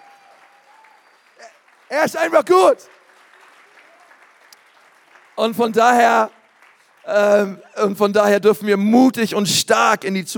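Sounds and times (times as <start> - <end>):
audience applauding: 0.0 - 8.2
speech: 1.9 - 3.0, 5.4 - 6.4, 7.0 - 10.3.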